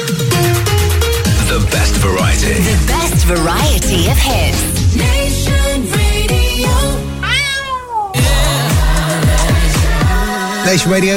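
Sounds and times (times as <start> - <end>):
thumping electronic music with heavy kick drum beat: 0.0 - 7.0, 8.2 - 10.4
speech: 1.6 - 6.8, 10.7 - 11.1
cat meowing: 7.2 - 8.2.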